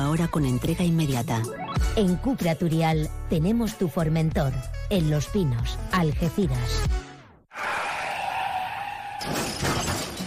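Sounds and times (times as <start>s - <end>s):
speech: 0.1s - 7.0s
car tires screeching in a sustained high skid: 7.5s - 10.2s
car crash impact in a traffic accident: 9.2s - 10.2s
debris clattering in a car crash: 9.2s - 10.2s
glass shattering in a car crash: 9.2s - 10.2s.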